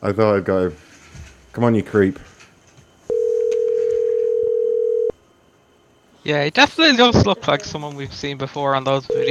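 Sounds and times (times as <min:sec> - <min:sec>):
speech: 0:00.0 - 0:00.9, 0:01.6 - 0:02.3, 0:06.2 - 0:09.3
faint noise: 0:00.0 - 0:09.3
outgoing phone call ringing tone: 0:03.1 - 0:05.2, 0:09.1 - 0:09.3.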